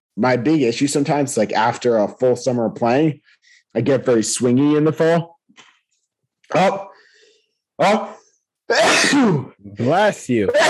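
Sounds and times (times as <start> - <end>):
speech: 0.2 - 5.7, 6.5 - 6.9, 7.8 - 10.6
loud forceful sneezes: 8.7 - 9.6.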